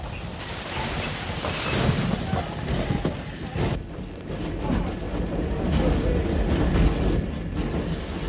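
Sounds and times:
train wheels or brakes squealing: 0.0 - 3.6
train rumbling as it pulls into the station at Potsdam: 0.0 - 8.2.

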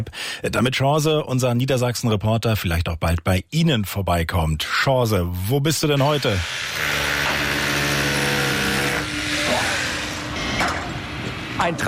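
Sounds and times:
speech: 0.0 - 7.1, 11.6 - 11.8
heavy machinery drone with engine hum at a building site in Niederlangen: 6.0 - 11.8.

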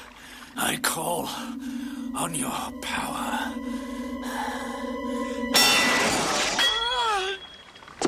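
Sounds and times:
sustained ringing tone: 0.2 - 8.0
speech: 1.0 - 3.9.

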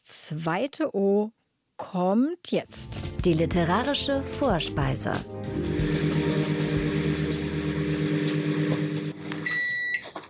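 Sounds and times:
speech: 0.3 - 6.2
microwave oven humming: 5.4 - 10.0.

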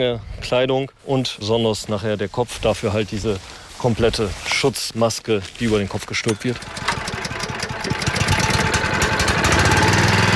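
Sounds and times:
speech: 0.0 - 6.9
large motorized vacuum cleaner sucking a caterpillar nest from a tree: 6.6 - 10.3.

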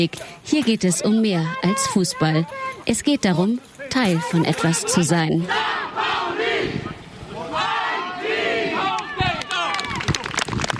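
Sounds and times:
speech: 0.0 - 5.8
large crowd cheering and shouting: 1.0 - 2.8, 4.1 - 10.4
applause and clapping: 8.9 - 10.7.

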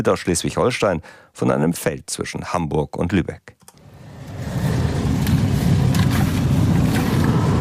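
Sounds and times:
speech: 0.0 - 3.6
sugar beet harvesting machines driving over fields in Lauenburg, Schleswig-Holstein: 3.8 - 7.5.

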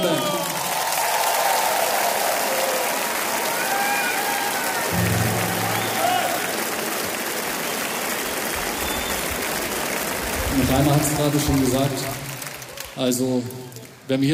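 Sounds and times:
audience clapping: 0.0 - 14.1
whistles: 5.1 - 6.6, 7.8 - 9.4
speech: 10.7 - 12.2, 13.0 - 14.3.

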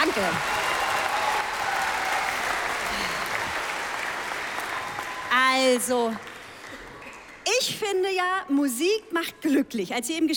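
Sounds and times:
audience clapping steadily: 0.0 - 7.4
speech: 0.2 - 0.6, 5.6 - 6.3, 7.5 - 10.3.

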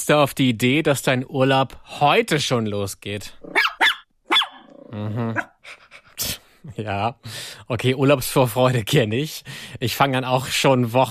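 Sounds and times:
speech: 0.1 - 3.7, 4.9 - 11.0
dog barking: 3.5 - 4.7
dog growling: 4.6 - 5.5.

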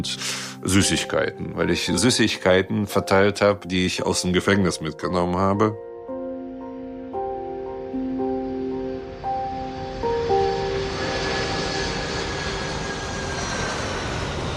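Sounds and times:
speech: 0.0 - 5.9
Russian special-flight airplane landing on a hot afternoon: 6.2 - 14.5.

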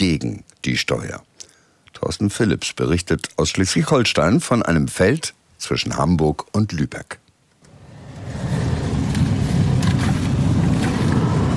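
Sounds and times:
speech: 0.0 - 1.3, 2.0 - 7.2
sugar beet harvesting machines driving over a field near Hamburg and Lübeck: 7.7 - 11.5.

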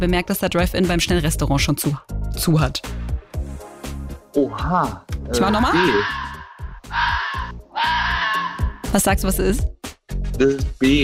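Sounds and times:
speech: 0.0 - 3.0, 4.4 - 6.2, 8.9 - 9.8, 10.4 - 11.0
female fox calling in winter mating season: 5.4 - 8.9.

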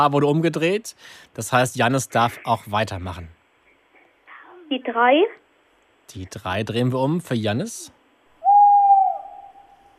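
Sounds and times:
speech: 0.0 - 3.4, 4.7 - 5.4, 6.1 - 8.0
tawny owl hooting: 8.4 - 9.9.

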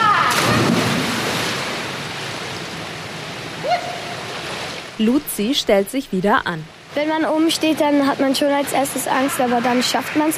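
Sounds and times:
body plunging feet-first into pool water: 0.3 - 1.8
speech: 5.0 - 10.3.

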